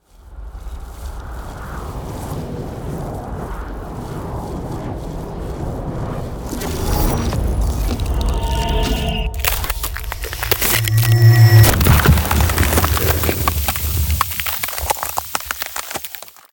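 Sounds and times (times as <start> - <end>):
ice spell icy vortex effect: 6.4 - 15.7.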